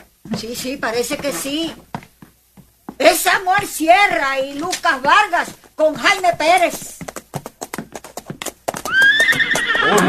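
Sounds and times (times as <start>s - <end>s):
horses galloping: 0.0s - 10.0s
speech: 0.3s - 2.0s, 3.0s - 6.9s
horse whinnying: 8.8s - 10.0s.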